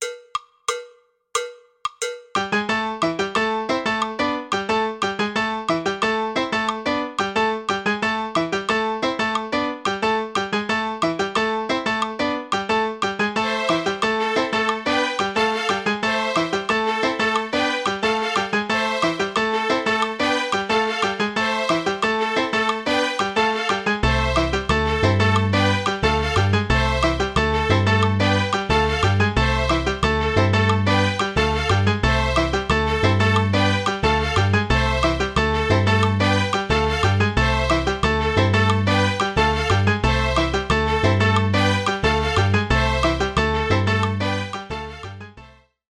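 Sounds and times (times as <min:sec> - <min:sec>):
fast tumbao rhythm: 0:00.0 - 0:44.9.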